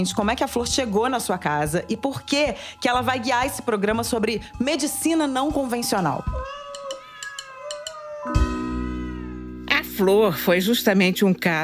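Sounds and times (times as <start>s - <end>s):
speech: 0.0s - 6.6s, 10.0s - 11.6s
kitten meowing: 6.2s - 9.5s.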